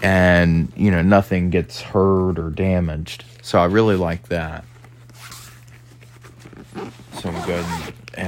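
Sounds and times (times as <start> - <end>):
speech: 0.0 - 4.7, 6.8 - 8.2
low steady electrical hum: 0.0 - 8.2
laptop bag zipper being pulled closed: 6.2 - 8.2.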